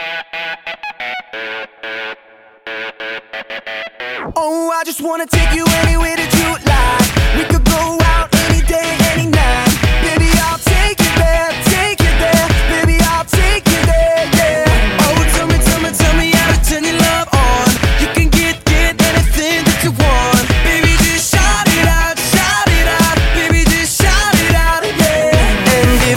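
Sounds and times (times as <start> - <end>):
male vocalists singing: 5.3 - 26.1.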